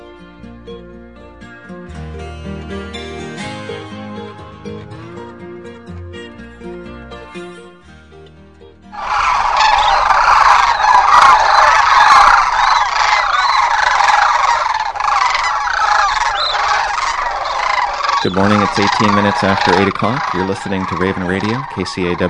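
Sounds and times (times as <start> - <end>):
music: 0.0 - 22.2
flock of sandhill cranes calling: 8.9 - 22.2
speech: 18.3 - 22.2.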